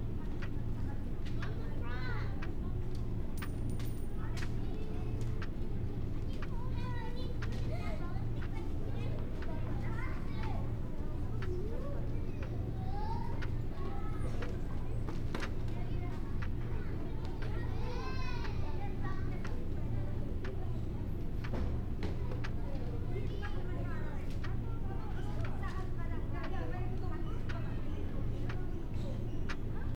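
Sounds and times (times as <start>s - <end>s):
kids chattering in indoor classroom: 0.0s - 29.9s.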